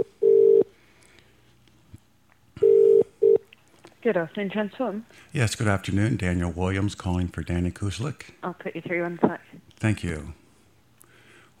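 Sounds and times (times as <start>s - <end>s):
phone ringback tone on an outgoing call to Great Britain: 0.0s - 0.7s, 2.6s - 3.4s
speech: 4.0s - 10.4s.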